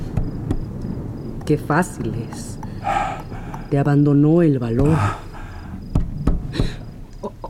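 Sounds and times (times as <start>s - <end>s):
faint ambient hum: 0.0s - 7.4s
speech: 1.5s - 2.6s, 3.7s - 5.3s
knocking on a door: 5.9s - 6.8s.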